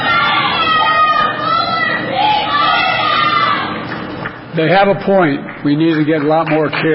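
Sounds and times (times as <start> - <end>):
crowd of protesters shouting a chant: 0.0 - 3.8
speech: 4.6 - 6.9.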